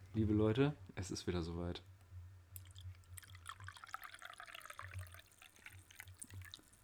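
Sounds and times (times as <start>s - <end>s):
speech: 0.2s - 1.9s
coffee pouring into a cup: 2.6s - 6.8s.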